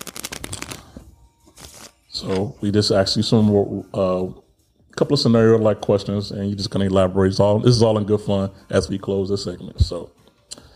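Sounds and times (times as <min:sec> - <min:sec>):
deck of playing cards being riffle shuffled: 0:00.0 - 0:02.5
speech: 0:02.2 - 0:04.4, 0:05.0 - 0:10.6.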